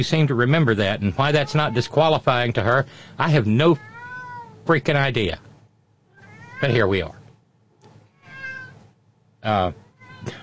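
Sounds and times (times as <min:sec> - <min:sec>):
speech: 0:00.0 - 0:03.9, 0:04.7 - 0:05.5, 0:06.6 - 0:07.2, 0:09.4 - 0:10.4
cat meowing: 0:01.2 - 0:02.3, 0:03.7 - 0:04.6, 0:06.1 - 0:07.0, 0:08.0 - 0:08.8, 0:09.7 - 0:10.4.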